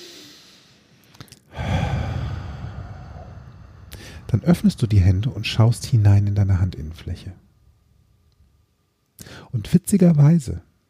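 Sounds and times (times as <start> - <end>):
deep breath drawn in during a guided relaxation exercise: 0.0 - 4.4, 9.2 - 9.5
speech: 4.3 - 7.5, 9.5 - 10.7.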